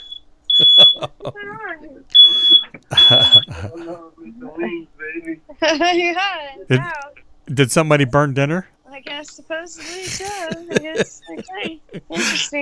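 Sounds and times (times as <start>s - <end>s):
fire alarm shrilling with high-pitched electronic tones: 0.0s - 1.1s, 2.2s - 3.5s
laughter: 0.6s - 1.9s, 2.7s - 4.0s, 6.7s - 6.9s, 9.8s - 12.6s
speech: 0.8s - 12.6s.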